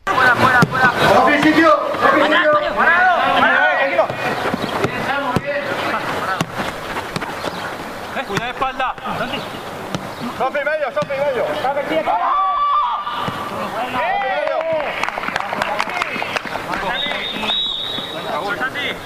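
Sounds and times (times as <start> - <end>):
football players shouting during a match: 0.0 - 6.7, 11.2 - 15.0
football match crowd noise: 0.0 - 19.0
football kicks: 0.4 - 1.7, 4.0 - 7.6, 8.3 - 9.2, 9.9 - 10.2, 10.9 - 11.4, 13.2 - 13.6.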